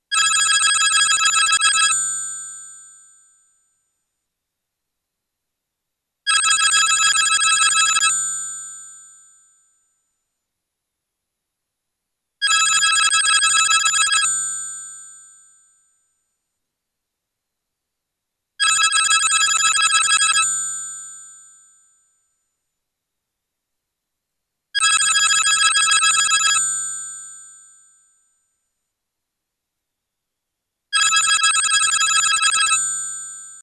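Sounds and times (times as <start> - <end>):
old Italian telephone ringtones: 0.1 - 2.0, 6.3 - 8.2, 12.4 - 14.4, 18.6 - 20.5, 24.8 - 26.7, 31.0 - 33.6.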